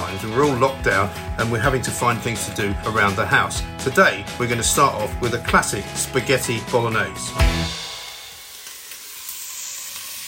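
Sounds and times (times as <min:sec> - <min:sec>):
speech: 0:00.1 - 0:07.9
freshly chopped onion sizzling in a hot frying pan: 0:07.7 - 0:10.2.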